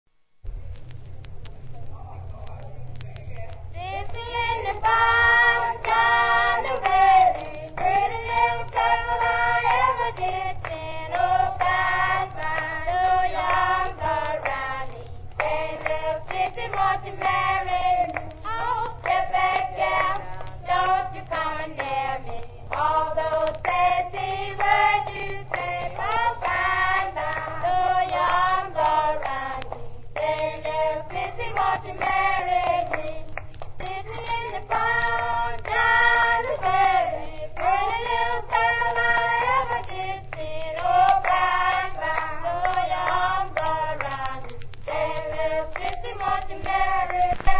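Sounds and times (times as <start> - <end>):
clapping song: 3.0 - 47.5.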